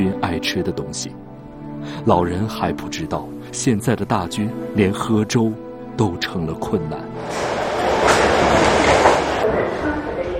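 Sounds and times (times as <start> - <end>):
speech: 0.1 - 7.6
subway train in motion rumbling: 7.1 - 10.3.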